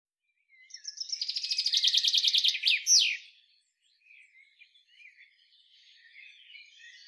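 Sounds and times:
Common chaffinch Fringilla coelebs song: 0.2 - 7.0.

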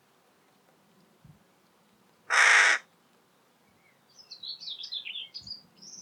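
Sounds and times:
carrion crow Corvus corone harsh hoarse caw: 2.3 - 2.9.

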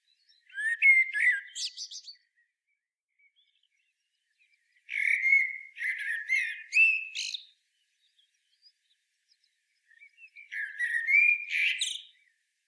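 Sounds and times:
common blackbird mellow whistled phrases: 0.1 - 2.5, 4.8 - 8.2, 9.8 - 12.3.

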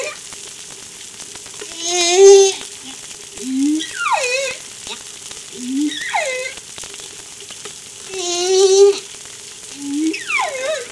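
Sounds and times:
whale calls: 0.0 - 0.2, 1.6 - 6.8, 8.0 - 10.8
background hum: 0.0 - 10.8.

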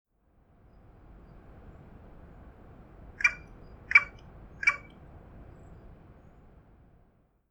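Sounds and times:
carrion crow giving harsh hoarse caws, Corvus corone: 3.2 - 4.9.

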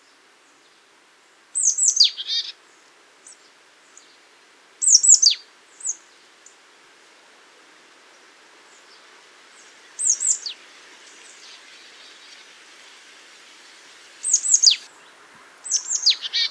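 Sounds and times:
marsh tit Poecile palustris high thin downslurred calls: 9.9 - 16.4.

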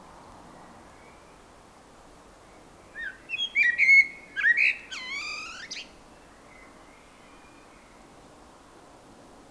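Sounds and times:
Turdus merula singing: 3.0 - 5.9.

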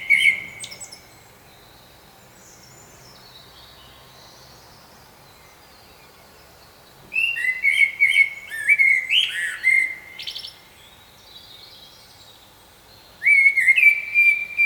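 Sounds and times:
Common blackbird song, Turdus merula, whistles and warbling phrases: 0.0 - 14.6.

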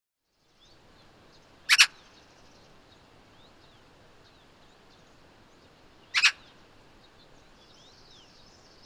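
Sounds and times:
faint twittering birds: 0.2 - 8.8
Eurasian magpie (Pica pica) calling with harsh rasping chak-chak notes: 1.6 - 2.1, 6.1 - 6.6.

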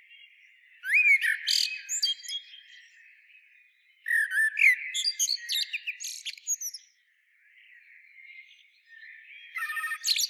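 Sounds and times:
Eurasian blackbird Turdus merula singing: 0.1 - 7.0, 7.6 - 10.2.

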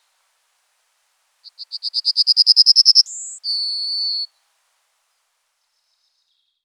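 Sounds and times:
yellowhammer Emberiza citrinella song: 1.6 - 4.3.

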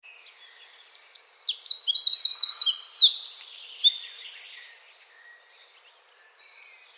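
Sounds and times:
Eurasian wren Troglodytes troglodytes singing: 0.8 - 4.8.

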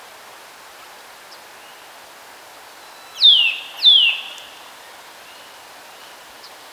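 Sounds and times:
Eurasian nuthatch Sitta europaea whistled calls: 3.0 - 4.6.

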